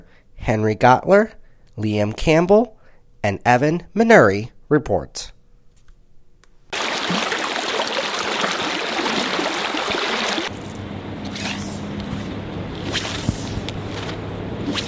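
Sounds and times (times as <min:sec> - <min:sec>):
speech: 0:00.1 - 0:05.4
river water rushing: 0:06.8 - 0:10.5.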